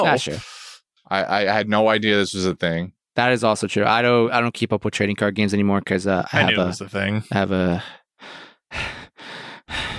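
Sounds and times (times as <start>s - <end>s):
speech: 0.0s - 0.5s, 1.1s - 8.9s
man breathing heavily: 7.8s - 9.9s.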